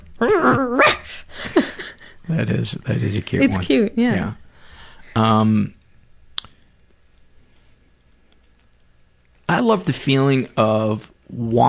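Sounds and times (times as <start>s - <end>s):
person imitating a dog's sleepy growl: 0.2s - 1.2s
speech: 0.2s - 1.3s, 2.3s - 4.4s, 5.2s - 5.8s, 9.6s - 11.6s.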